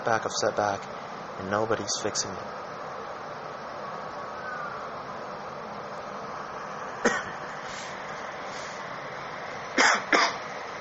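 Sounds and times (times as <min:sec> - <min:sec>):
speech: 0:00.0 - 0:02.7
steady hiss: 0:00.0 - 0:10.8
person coughing: 0:07.1 - 0:07.4, 0:09.8 - 0:10.4.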